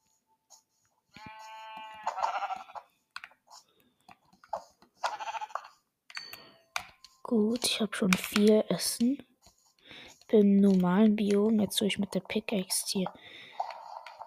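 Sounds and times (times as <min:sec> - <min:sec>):
video game sheep bleating: 0:01.1 - 0:02.9, 0:05.0 - 0:05.8
speech: 0:07.3 - 0:09.3, 0:10.3 - 0:13.3.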